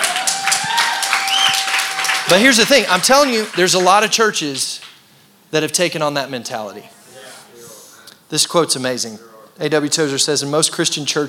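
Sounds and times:
crowd applauding: 0.0 - 5.0
speech: 2.3 - 4.8, 5.5 - 7.0, 8.3 - 11.2.

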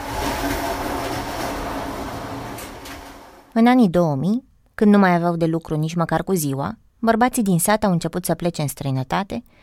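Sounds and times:
train rumbling along rails: 0.0 - 3.5
speech: 3.6 - 9.6.

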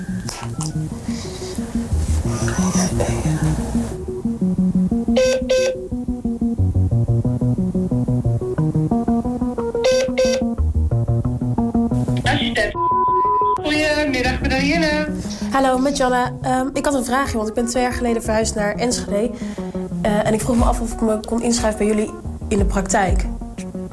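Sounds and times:
music: 0.0 - 23.9
telephone dialing tones: 5.2 - 5.8, 9.8 - 10.6
speech: 15.6 - 23.3.

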